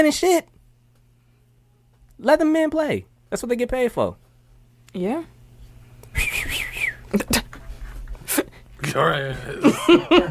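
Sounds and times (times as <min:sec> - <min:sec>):
speech: 0:00.0 - 0:00.6, 0:02.2 - 0:04.2, 0:04.9 - 0:05.4, 0:08.9 - 0:10.2
short sharp noise bursts: 0:06.1 - 0:07.0
shrill trilling whistle blast: 0:06.2 - 0:07.0
laughter: 0:09.4 - 0:10.2.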